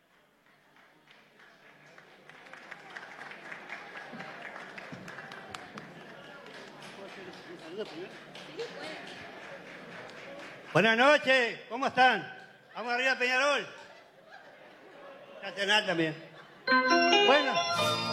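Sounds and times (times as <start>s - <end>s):
audience applauding at a singing contest: 0.0s - 11.0s
speech: 7.8s - 9.2s, 10.7s - 13.8s, 15.4s - 18.0s
laughter: 12.7s - 17.7s.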